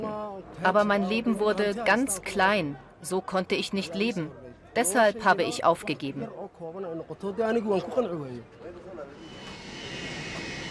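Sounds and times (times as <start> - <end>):
speech: 0.0 - 8.6
airplane engine whining at an airport: 9.1 - 10.6.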